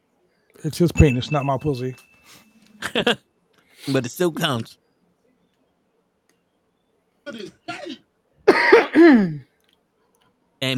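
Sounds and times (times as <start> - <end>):
speech: 0.6 - 4.8, 7.3 - 7.6, 9.0 - 9.5, 10.6 - 10.7
person with a cold coughing: 7.3 - 9.5.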